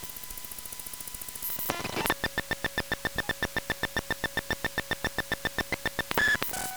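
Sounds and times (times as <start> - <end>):
Zoom H1 audio recorder booting: 1.4 - 6.7.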